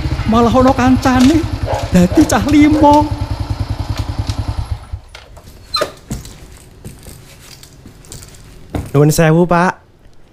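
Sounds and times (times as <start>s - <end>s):
motorcycle engine chugging, carrying two riders: 0.0s - 5.3s
speech: 0.3s - 3.2s, 9.0s - 9.8s
thumps and clatter: 5.1s - 9.0s.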